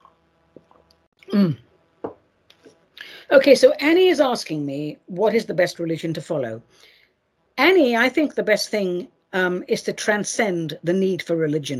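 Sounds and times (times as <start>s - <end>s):
person sipping a drink: 0.0s - 1.6s
speech: 1.3s - 1.6s, 3.4s - 7.0s, 7.6s - 11.7s.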